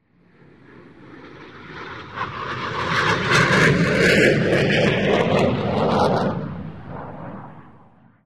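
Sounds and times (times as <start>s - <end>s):
Eurofighter jet aircraft: 0.0s - 8.2s.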